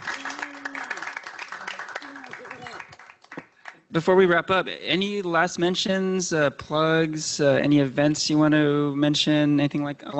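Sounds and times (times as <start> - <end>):
audience voices cheering: 0.0 - 3.1
audience applauding for a panel: 0.0 - 3.8
speech: 3.9 - 10.1.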